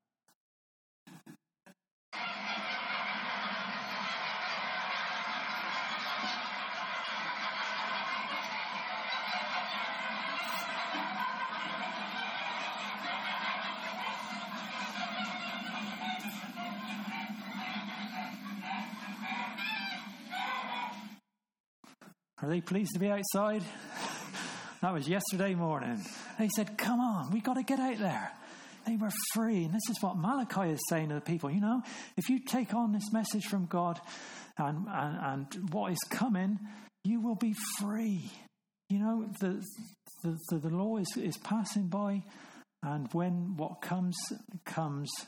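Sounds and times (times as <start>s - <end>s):
laughter: 2.2s - 21.2s, 23.5s - 24.8s
flock of domestic geese honking outdoors: 5.7s - 21.1s
speech: 22.5s - 23.9s, 24.8s - 45.2s.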